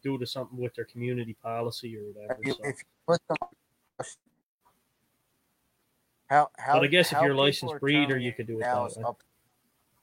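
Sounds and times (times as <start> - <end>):
speech: 0.0 - 4.3, 6.3 - 9.3
voice on a call breaking up into choppy fragments: 2.1 - 4.1, 6.3 - 9.1.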